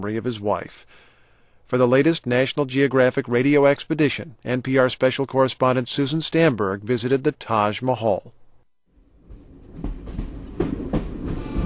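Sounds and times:
speech: 0:00.0 - 0:01.1, 0:01.7 - 0:08.4
passenger train rumbling along the tracks: 0:09.2 - 0:11.6
train wheels clacking over rail joints: 0:09.3 - 0:11.6.

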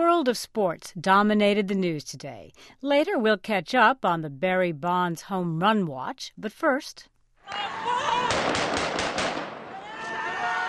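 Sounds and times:
speech: 0:00.0 - 0:08.7
celebratory gunfire in city streets: 0:07.5 - 0:10.6.

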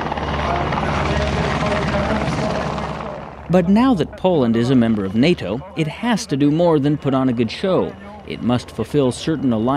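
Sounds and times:
military helicopter engine roaring at a Polish military base: 0:00.0 - 0:09.7
speech: 0:03.5 - 0:09.7.

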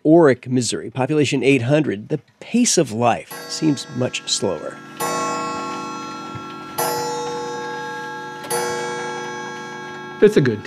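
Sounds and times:
speech: 0:00.1 - 0:05.0, 0:10.2 - 0:10.6
antique clocks softly ticking: 0:03.2 - 0:10.6
sustained ringing tone from antique clocks: 0:03.2 - 0:10.6.

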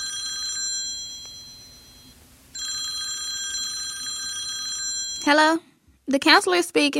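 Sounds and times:
telephone ring tone on an outgoing call to a high school: 0:00.0 - 0:05.4
speech: 0:05.2 - 0:06.9.

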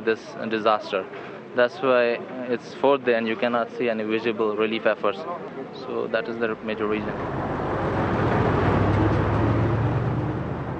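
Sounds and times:
speech: 0:00.0 - 0:07.4
heavy vehicles rumbling along a road: 0:06.4 - 0:10.7.

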